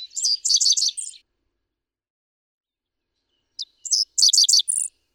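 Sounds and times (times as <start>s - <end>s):
Dickcissel calling: 0.2s - 1.1s, 3.6s - 4.9s.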